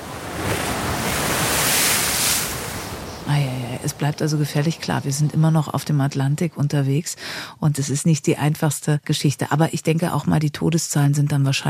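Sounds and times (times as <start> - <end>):
stormy Atlantic Ocean waves sweeping over a ship's deck: 0.0 - 6.1
gusty wind: 0.0 - 6.2
speech: 3.8 - 11.6.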